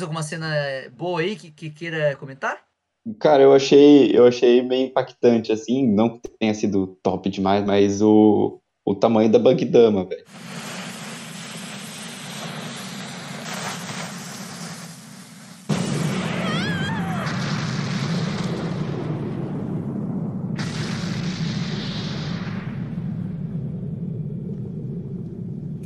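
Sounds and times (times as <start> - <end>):
speech: 0.0 - 10.6
sudden heavy explosion blast: 10.3 - 25.8
loud sustained low rumble: 22.1 - 25.8.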